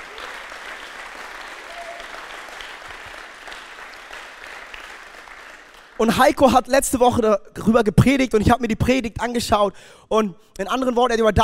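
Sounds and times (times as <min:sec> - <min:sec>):
crowd applauding: 0:00.0 - 0:06.1
speech: 0:06.0 - 0:11.4.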